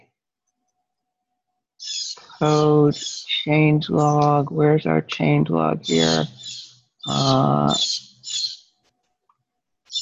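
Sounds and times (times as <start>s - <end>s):
angry blue jay calling: 1.8s - 4.4s, 5.7s - 8.7s
speech: 2.4s - 8.1s.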